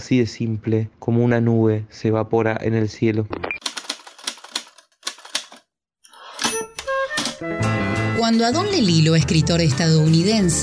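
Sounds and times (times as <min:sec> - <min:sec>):
speech: 0:00.0 - 0:03.4, 0:08.3 - 0:10.6
typewriter keys clacking: 0:03.6 - 0:05.6, 0:06.4 - 0:07.4.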